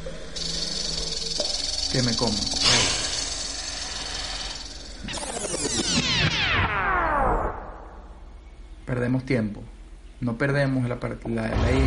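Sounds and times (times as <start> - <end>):
airy hiss of video game snakes approaching: 0.0 - 5.2
low hum: 0.0 - 8.9
speech: 1.9 - 2.8, 8.9 - 11.8.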